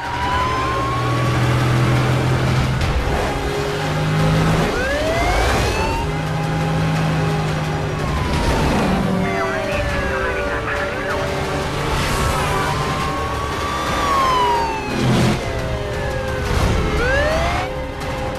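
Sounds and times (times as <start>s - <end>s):
car tires: 0.0s - 18.3s
heavy traffic noise in Las Vegas: 0.0s - 18.3s
police car sirens wailing in a chase in Las Vegas: 0.0s - 18.3s
stolen silver Charger engine revving and roaring: 0.0s - 18.3s.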